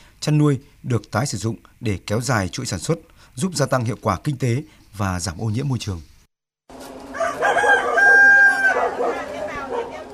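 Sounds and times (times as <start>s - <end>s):
speech: 0.2s - 6.1s
Hmong chicken rooster crowing at a farming cooperative in Thai Nguyen province Vietnam: 7.1s - 10.0s.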